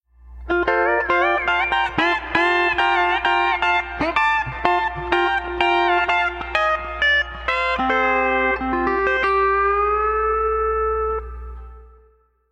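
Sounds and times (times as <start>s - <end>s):
bouncy pedal steel guitar: 0.4s - 12.1s.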